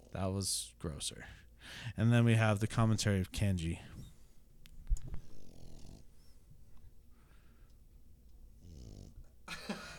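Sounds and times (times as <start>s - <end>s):
low hum: 0.0s - 9.9s
speech: 0.1s - 4.0s
small dog snoring: 5.2s - 6.4s, 8.6s - 9.3s.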